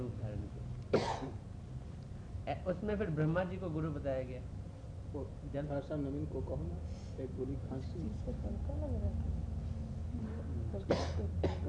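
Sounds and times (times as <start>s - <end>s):
hum: 0.0s - 11.6s
harsh coughs: 0.9s - 1.4s, 10.9s - 11.6s
speech: 2.4s - 9.4s, 10.1s - 11.6s.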